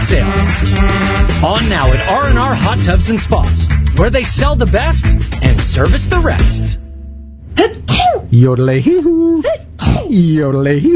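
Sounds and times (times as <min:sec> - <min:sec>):
speech: 0:00.0 - 0:06.8, 0:07.6 - 0:10.9
person sneezing loudly: 0:07.6 - 0:08.3, 0:09.5 - 0:10.2.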